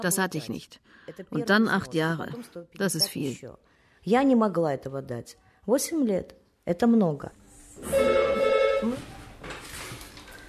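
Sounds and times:
speech: 0.0 - 8.2
telephone ringing with a loud electronic trill: 7.9 - 9.0.

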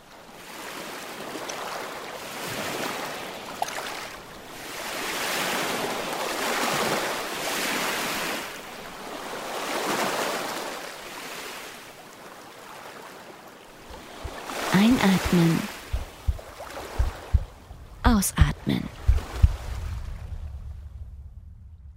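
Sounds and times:
ocean waves washing onto a beach: 0.0 - 17.7
speech: 14.9 - 15.7, 18.2 - 18.9.

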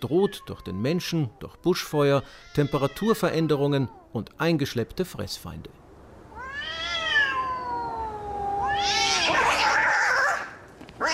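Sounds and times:
cat meowing: 0.0 - 4.1, 6.3 - 11.1
speech: 0.0 - 5.8.

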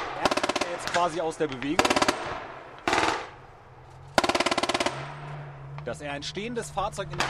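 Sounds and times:
automatic gunfire at armoured reconnaissance vehicles at the edge of a clearing: 0.0 - 3.4, 4.2 - 5.3
speech: 0.9 - 2.5, 5.8 - 7.2.

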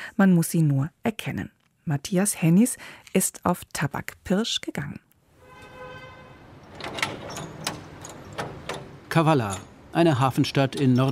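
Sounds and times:
speech: 0.2 - 5.1, 9.2 - 11.1
heavy iron doors of a massive building grinding open: 5.4 - 11.1
sharp metal clanks of iron doors: 6.6 - 11.1.

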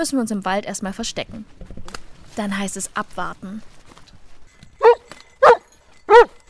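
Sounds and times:
speech: 0.0 - 1.7, 2.4 - 3.8
search dog barking to indicate a found person: 4.8 - 6.4.

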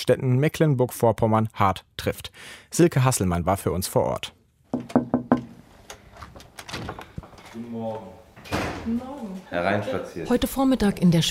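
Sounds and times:
speech: 0.0 - 5.0, 7.6 - 11.3
knocking on the window of a fish restaurant: 4.7 - 5.6.

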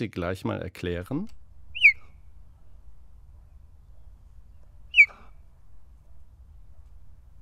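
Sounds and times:
speech: 0.0 - 1.4
cheetah chirping: 1.6 - 5.6.

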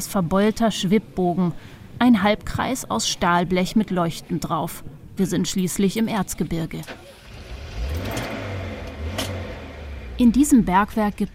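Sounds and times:
speech: 0.0 - 7.2, 10.2 - 11.3
minibus engine driving down a ramp into a mine in the Erzgebirge: 6.1 - 11.3.

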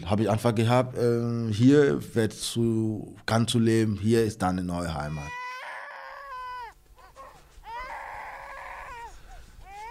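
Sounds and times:
speech: 0.1 - 5.4
newborn baby crying during diaper change: 5.2 - 9.9.

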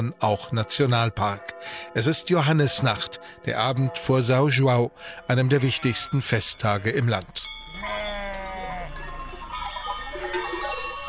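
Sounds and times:
speech: 0.0 - 8.1
many small herd bells clanking and jingling: 4.9 - 11.0
herds of sheep and goats bleating in a village lane in Serra da Estrela Portugal: 7.5 - 9.5.

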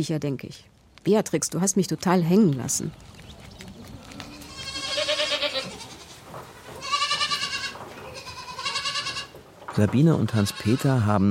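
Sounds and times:
speech: 0.0 - 3.7, 9.8 - 11.2
several goats bleating: 4.0 - 9.4, 10.2 - 11.2.

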